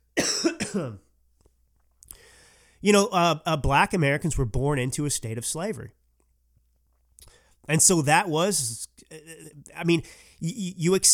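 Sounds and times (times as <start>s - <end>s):
person coughing: 0.2s - 1.1s
speech: 0.4s - 1.0s, 2.8s - 6.0s, 7.7s - 11.1s
faint breath or movement: 2.1s - 2.8s, 7.2s - 7.7s.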